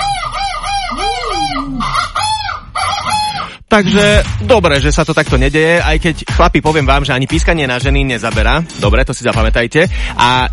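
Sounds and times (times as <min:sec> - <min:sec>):
rooster-like clucking bird calls: 0:00.0 - 0:03.6
speech: 0:03.7 - 0:10.5.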